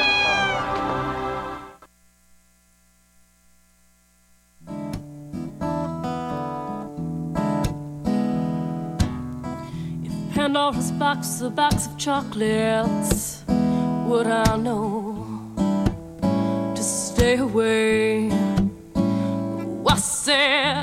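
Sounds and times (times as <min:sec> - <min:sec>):
cat meowing: 0:00.0 - 0:01.1
music: 0:00.0 - 0:01.9, 0:04.6 - 0:20.8
speech: 0:10.5 - 0:15.0, 0:17.3 - 0:18.4.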